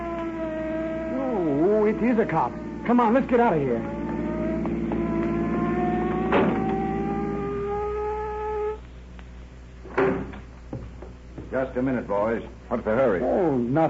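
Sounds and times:
car engine humming: 0:00.0 - 0:08.9
speech: 0:02.0 - 0:04.0, 0:11.7 - 0:13.8.

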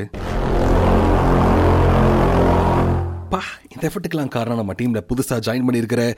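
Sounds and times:
speech: 0:00.0 - 0:00.8, 0:03.3 - 0:06.1
loud steady droning buzz: 0:00.0 - 0:03.4.

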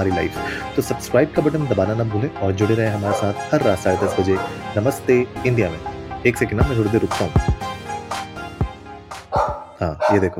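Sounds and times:
speech: 0:00.0 - 0:07.5, 0:09.8 - 0:10.3
several dogs barking in short sharp bursts: 0:02.9 - 0:04.6, 0:09.2 - 0:10.3.

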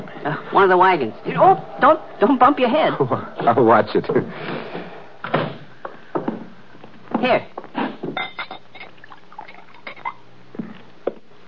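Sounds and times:
speech: 0:00.2 - 0:04.7, 0:07.2 - 0:07.6
small glassy clinks and knocks: 0:08.2 - 0:09.6
drink being poured into a glass inside a wagon: 0:08.8 - 0:10.0.

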